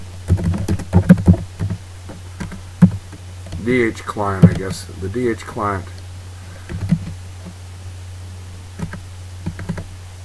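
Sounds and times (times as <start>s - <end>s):
steady low hum: 0.0s - 10.2s
typing on a computer keyboard: 0.2s - 1.8s, 2.4s - 3.6s, 6.7s - 7.2s, 8.8s - 9.9s
speech: 3.7s - 6.0s.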